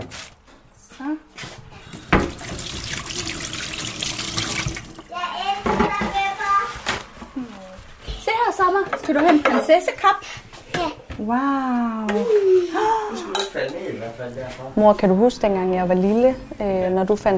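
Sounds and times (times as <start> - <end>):
water gushing from a tap into a sink: 2.0 - 5.0
child speaking: 5.1 - 8.4, 10.7 - 11.1
speech: 9.1 - 10.4, 11.2 - 17.3.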